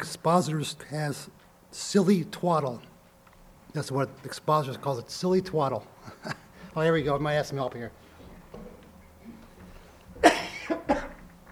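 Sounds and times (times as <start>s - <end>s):
speech: 0.0s - 2.9s, 3.7s - 8.0s
person coughing harshly: 10.2s - 11.2s.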